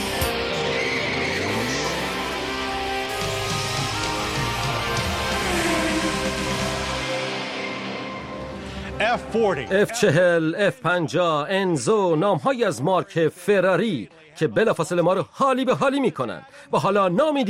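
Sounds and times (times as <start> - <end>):
engine of a new Hyundai Sonata accelerating: 0.0 - 9.3
speech: 9.2 - 17.4.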